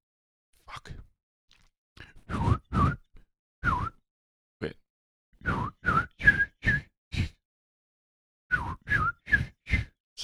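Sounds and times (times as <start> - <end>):
person whistling an imitation of a bird call: 2.3 - 4.0, 5.4 - 7.4, 8.5 - 10.0
speech: 4.6 - 4.8.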